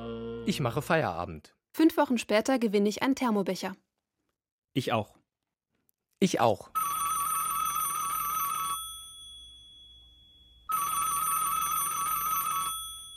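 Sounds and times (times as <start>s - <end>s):
speech: 0.4s - 3.8s, 4.8s - 5.2s, 6.2s - 6.8s
telephone ringing with a warbling electronic ringtone for an incoming call: 6.8s - 13.1s.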